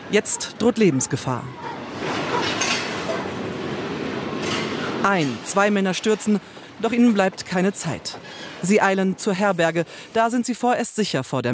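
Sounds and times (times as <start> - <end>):
speech: 0.1 - 1.8, 5.0 - 11.5
freight train rumbling along the tracks: 1.6 - 10.0.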